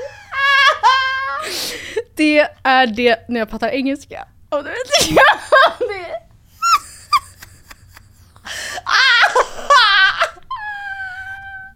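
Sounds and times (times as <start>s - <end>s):
person crying and sobbing: 0.0s - 2.1s, 6.5s - 11.7s
speech: 2.2s - 5.4s.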